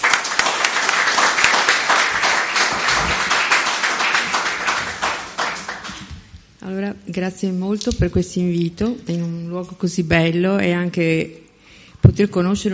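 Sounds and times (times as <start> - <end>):
audience applause: 0.0 - 6.1
speech: 7.1 - 11.4, 12.1 - 12.7.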